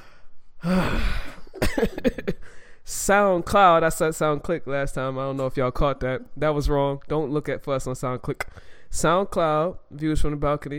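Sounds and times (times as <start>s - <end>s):
deep breath: 0.0s - 1.5s, 2.4s - 2.9s, 8.5s - 8.9s
speech: 1.8s - 2.2s, 2.9s - 10.7s.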